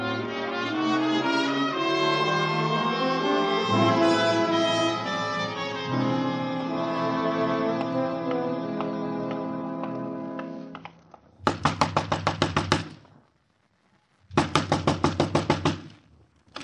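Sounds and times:
sustained musical tone: 0:00.0 - 0:10.8
loud hard knocking on a door: 0:11.4 - 0:12.9, 0:14.4 - 0:15.9.

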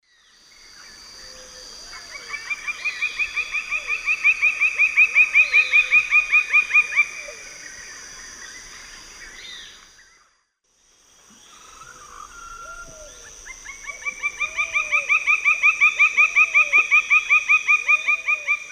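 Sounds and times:
Dryocopus lineatus calling in the Eastern Lowlands of South America: 0:02.1 - 0:07.3, 0:11.4 - 0:18.7.

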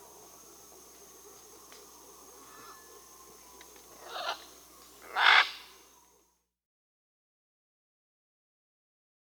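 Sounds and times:
background hiss: 0:00.0 - 0:06.4
scarlet macaw squawking in the Amazon, Peru: 0:04.1 - 0:05.7.

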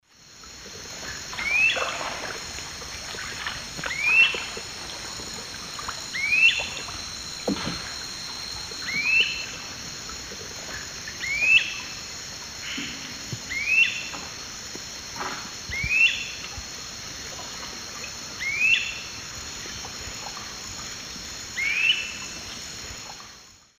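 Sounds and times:
Myiarchus crinitus calls in the Eastern Lowlands of S. America: 0:01.0 - 0:02.3, 0:03.1 - 0:05.2, 0:05.8 - 0:09.8, 0:10.7 - 0:12.0, 0:12.6 - 0:14.2, 0:15.7 - 0:16.4, 0:18.4 - 0:19.1.

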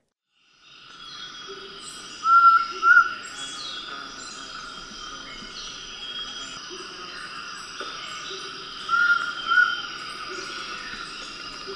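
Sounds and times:
large-headed flatbill calling in Ecuador: 0:02.2 - 0:03.2, 0:08.9 - 0:09.9.

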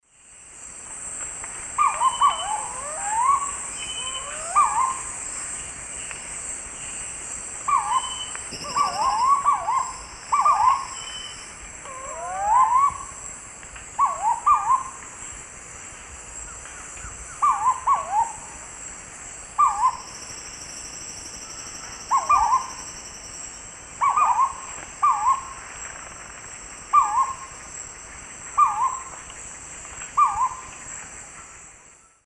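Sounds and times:
Querula purpurata calls: 0:01.8 - 0:05.2, 0:07.7 - 0:13.2, 0:14.0 - 0:15.0, 0:16.5 - 0:18.5, 0:19.6 - 0:20.2, 0:21.5 - 0:22.9, 0:24.0 - 0:25.6, 0:26.9 - 0:27.6, 0:28.5 - 0:29.1, 0:30.1 - 0:30.8.

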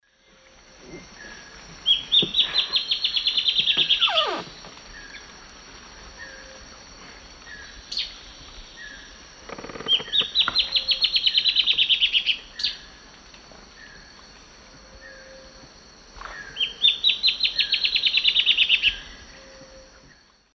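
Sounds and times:
Hypocnemoides melanopogon song and call in the Eastern Lowlands of South America: 0:01.2 - 0:05.3, 0:07.4 - 0:12.9, 0:16.3 - 0:20.2.

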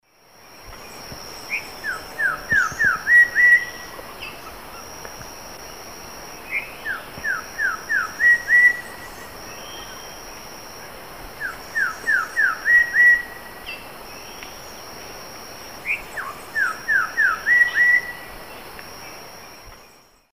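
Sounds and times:
Saltator coerulescens song in the Eastern Lowlands of South America: 0:00.7 - 0:04.9, 0:06.4 - 0:10.2, 0:11.4 - 0:14.9, 0:15.8 - 0:18.7.

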